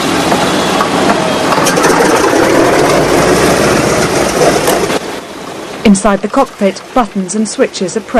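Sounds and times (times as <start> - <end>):
B-17 bomber heavy propeller engines starting up: 0.0 - 5.3
speech: 5.8 - 8.1.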